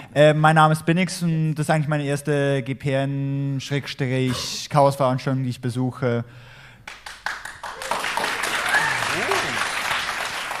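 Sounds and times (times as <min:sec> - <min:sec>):
speech: 0:00.2 - 0:06.5
sizable audience clapping: 0:06.8 - 0:10.5.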